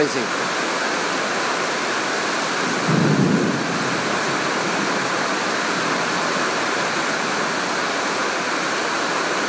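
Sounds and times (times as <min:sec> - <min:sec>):
speech: 0:00.0 - 0:00.6
heavy rain pouring down: 0:00.0 - 0:09.4.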